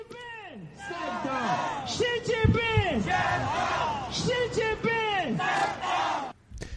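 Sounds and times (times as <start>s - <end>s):
protesters chanting slogans in unison outdoors at night in Guangzhou China: 0.7s - 6.4s.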